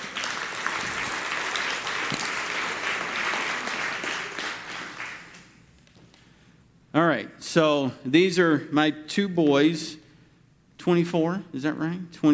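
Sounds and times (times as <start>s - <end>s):
crowd applauding: 0.0s - 5.6s
speech: 7.0s - 10.0s, 10.8s - 12.3s.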